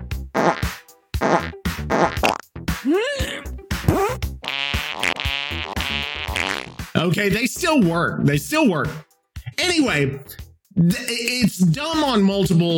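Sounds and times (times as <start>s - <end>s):
fart sound effects: 0.4s - 2.4s, 3.8s - 6.9s
speech: 7.2s - 9.1s, 9.7s - 12.7s.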